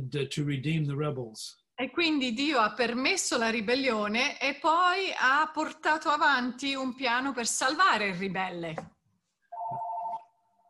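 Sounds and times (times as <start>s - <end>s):
speech: 0.1s - 9.0s
phone ringing with an electronic tone: 9.5s - 10.4s.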